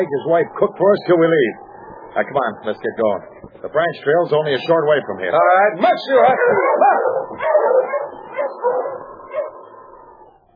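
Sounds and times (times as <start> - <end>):
speech: 0.0 - 7.5
team of sled dogs yelping and barking: 5.4 - 10.4.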